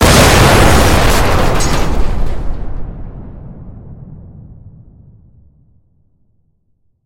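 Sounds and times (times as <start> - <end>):
rumbling bomb explosion: 0.0 - 6.0.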